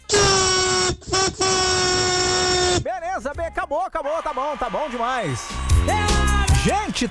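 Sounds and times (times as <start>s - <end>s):
car horn sounding during a street horn-honking rally: 0.0s - 2.8s
speech: 3.7s - 7.0s.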